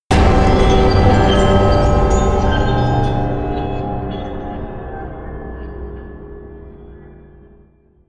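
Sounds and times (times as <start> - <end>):
distorted high bell: 0.1 - 6.0.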